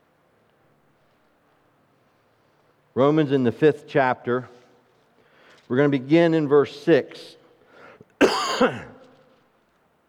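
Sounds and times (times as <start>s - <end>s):
speech: 3.0s - 4.6s, 5.7s - 7.4s, 8.6s - 8.9s
person coughing harshly: 8.2s - 9.1s
raspy throat clearing: 8.2s - 9.1s.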